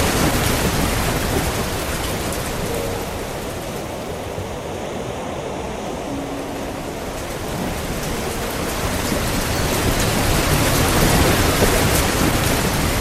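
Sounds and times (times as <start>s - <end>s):
rain pattering on grass: 0.0s - 3.9s, 7.2s - 12.9s
peaceful piano: 0.0s - 12.9s.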